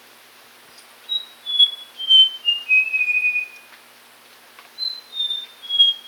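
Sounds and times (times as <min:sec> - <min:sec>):
Papuan logrunner piping whistles: 0:01.1 - 0:03.7, 0:04.8 - 0:06.0.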